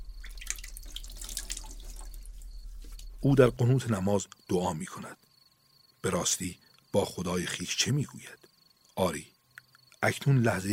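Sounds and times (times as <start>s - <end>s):
water poured into a basin for ritual washing: 0.0s - 3.3s
speech: 3.2s - 5.2s, 6.0s - 9.4s, 10.0s - 10.7s.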